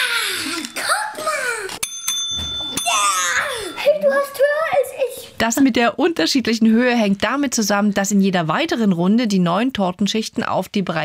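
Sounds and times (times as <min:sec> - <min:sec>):
tabletop game bell slapped: 0:00.7 - 0:04.4
speech: 0:05.4 - 0:11.0.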